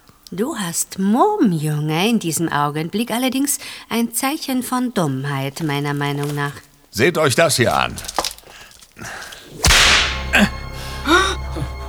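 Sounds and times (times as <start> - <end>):
speech: 0.3 - 8.2
whip crack: 9.4 - 10.7.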